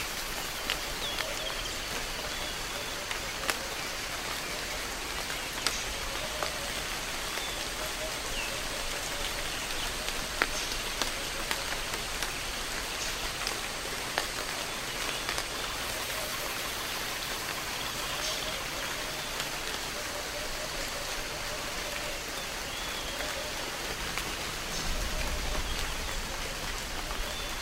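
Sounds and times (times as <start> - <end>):
steady rain on leaves and branches: 0.0 - 27.6.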